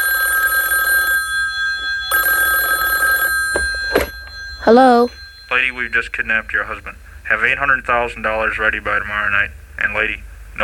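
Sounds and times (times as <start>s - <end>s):
telephone ringing with a bright high electronic trill: 0.0s - 6.7s
speech: 4.7s - 10.6s.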